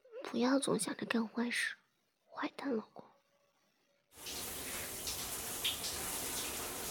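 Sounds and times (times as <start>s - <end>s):
speech: 0.3s - 1.8s, 2.4s - 3.1s
shower water running: 4.2s - 6.8s.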